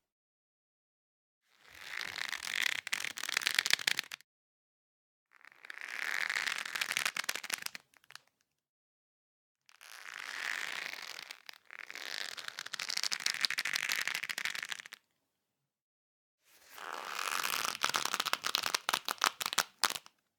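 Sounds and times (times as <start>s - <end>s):
leather stretching creak: 1.9s - 4.1s, 5.3s - 8.2s, 9.7s - 15.0s, 16.7s - 20.0s.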